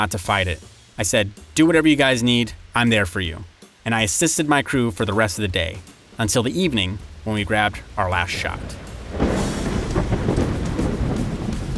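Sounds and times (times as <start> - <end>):
speech: 0.0 - 9.2
torrential rain: 0.0 - 11.7
deep rumbling thunder: 8.4 - 11.7.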